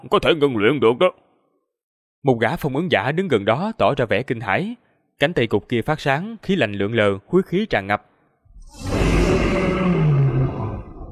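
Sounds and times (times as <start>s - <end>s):
speech: 0.0s - 1.3s, 2.2s - 8.1s
deep growling roar of a creature fighting in a jungle: 8.5s - 11.1s.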